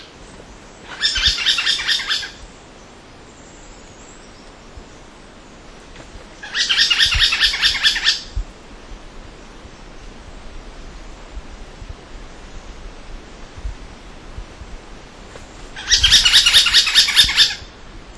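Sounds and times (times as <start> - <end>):
Pale-headed Woodpecker in Laos: 0.9 - 2.4, 6.4 - 8.4, 15.8 - 17.7.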